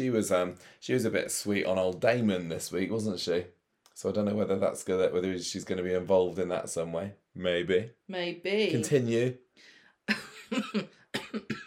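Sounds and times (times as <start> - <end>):
speech: 0.0 - 11.6
harsh coughs: 11.2 - 11.6.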